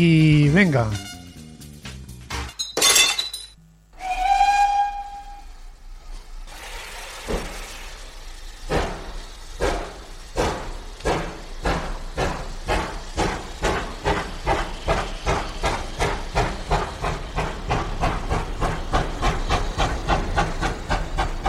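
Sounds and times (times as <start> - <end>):
speech: 0.0 - 1.1
glass bottle smashed against a steam locomotive: 2.6 - 3.6
steam train whistle: 4.0 - 5.8
steam train chuffing: 4.0 - 21.4.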